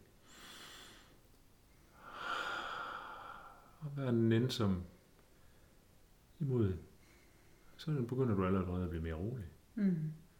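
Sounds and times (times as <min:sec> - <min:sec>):
slow calm breathing: 0:00.1 - 0:03.8, 0:05.2 - 0:06.0, 0:07.0 - 0:07.8
speech: 0:03.8 - 0:05.0, 0:06.4 - 0:06.9, 0:07.8 - 0:10.2.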